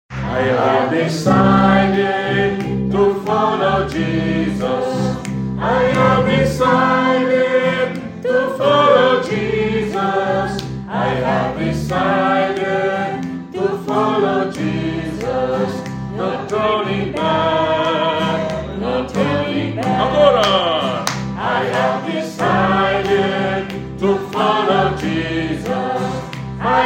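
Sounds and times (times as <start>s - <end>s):
sopranos singing: 0.1s - 26.8s.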